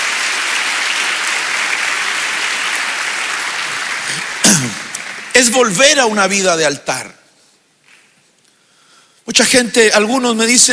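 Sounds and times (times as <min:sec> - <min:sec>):
audience clapping hands in dense applause: 0:00.0 - 0:06.2
speech: 0:05.4 - 0:07.2, 0:09.4 - 0:10.7.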